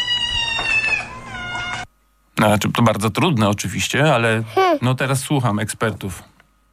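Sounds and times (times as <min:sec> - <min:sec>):
several cats meowing in chorus: 0:00.0 - 0:01.9
speech: 0:02.4 - 0:06.4.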